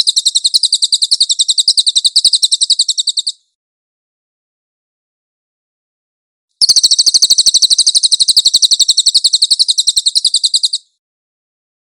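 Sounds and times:
Cililin singing fast sharp high-pitched repeated notes: 0.0s - 3.4s, 6.6s - 11.0s.

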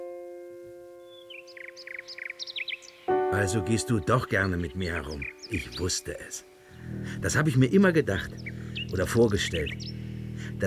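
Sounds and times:
nightingale singing on a woodland walk: 0.0s - 10.6s
speech: 3.3s - 9.9s
steady sustained low drone: 6.6s - 10.6s.

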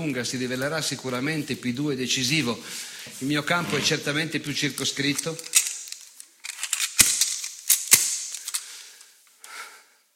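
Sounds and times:
speech: 0.0s - 5.6s
oiled Luger Parabellum 8 mm pistol being handled: 5.2s - 8.7s.

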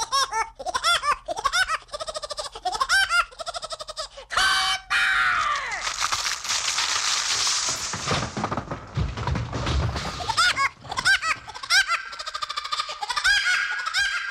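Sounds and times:
voice performing a cartoon woodpecker laugh in a novelty theme song: 0.0s - 4.6s, 10.9s - 14.2s
noisy clattering musical passage in a novelty theme song record: 5.8s - 11.9s.

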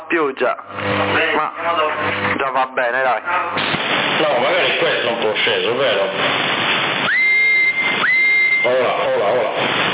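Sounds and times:
constant CB radio hiss: 0.0s - 9.9s
speech: 0.1s - 6.8s, 8.6s - 9.9s
whistling through a CB radio transmission on the 27 MHz band: 7.0s - 9.1s.

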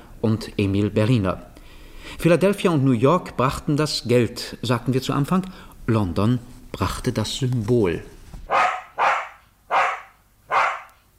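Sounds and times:
speech: 0.2s - 1.5s, 2.1s - 8.2s
white terrier barking: 8.5s - 11.0s.

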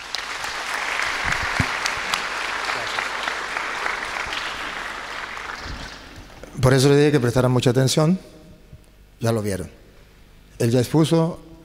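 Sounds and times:
audience applause at a religious gathering: 0.0s - 6.4s
speech: 6.6s - 8.4s, 9.2s - 9.8s, 10.6s - 11.5s.

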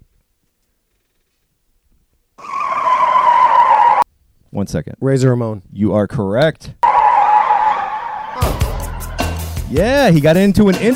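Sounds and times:
loud sustained car tire screech: 2.4s - 4.0s, 6.8s - 10.1s
speech: 4.6s - 6.8s, 9.7s - 10.9s.

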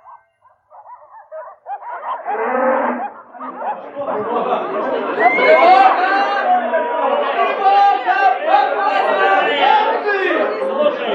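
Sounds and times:
laughter: 1.2s - 11.1s
cows mooing as villagers drive livestock to pasture: 1.4s - 3.8s
speech: 3.8s - 6.1s.

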